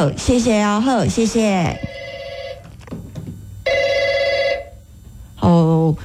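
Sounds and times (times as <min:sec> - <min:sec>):
speech: 0:00.0 - 0:01.9, 0:05.4 - 0:06.0
telephone ringing: 0:01.3 - 0:04.9.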